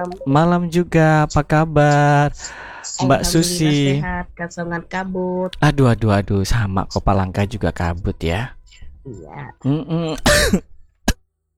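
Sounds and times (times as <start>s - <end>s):
speech: 0.0s - 10.7s
woman with a sore nose coughing: 9.6s - 10.7s.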